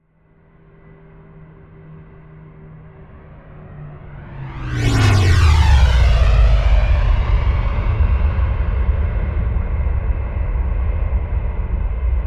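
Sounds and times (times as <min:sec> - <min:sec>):
Bombardier Learjet plane flyby left to right close: 0:03.0 - 0:12.2.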